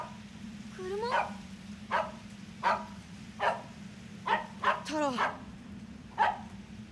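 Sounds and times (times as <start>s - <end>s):
low steady hum: 0.0s - 6.9s
dog barking excitedly at a van: 1.1s - 5.5s, 6.2s - 6.9s
speech: 4.9s - 5.4s.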